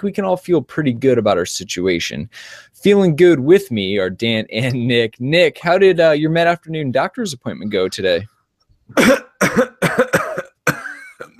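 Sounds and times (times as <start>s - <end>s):
speech: 0.0s - 8.3s, 8.9s - 10.2s
harsh chesty coughs: 8.9s - 11.3s.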